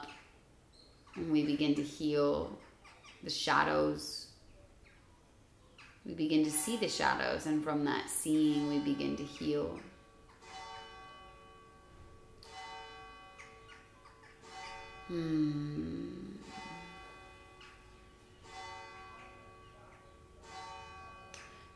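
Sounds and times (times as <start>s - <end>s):
speech: 1.2s - 4.2s, 6.0s - 9.9s, 15.1s - 15.9s
church bells ringing: 6.6s - 15.2s, 16.2s - 21.7s.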